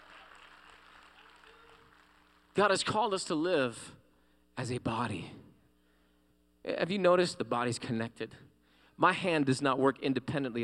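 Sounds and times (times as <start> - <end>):
audience clapping: 0.0 - 2.8
speech: 2.6 - 4.0, 4.6 - 5.4, 6.6 - 10.6.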